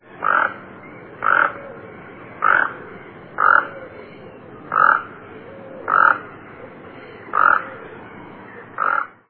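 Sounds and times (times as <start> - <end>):
toucan calling: 0.2 - 6.3, 7.0 - 7.8.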